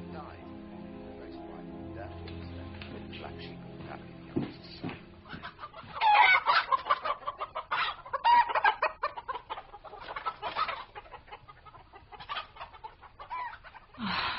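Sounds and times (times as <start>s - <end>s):
low steady hum: 0.0s - 5.8s
chickens clucking: 0.0s - 14.0s.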